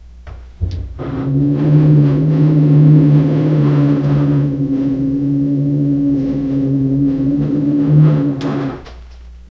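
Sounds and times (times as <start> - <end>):
low deep rumbling: 0.0 - 9.2.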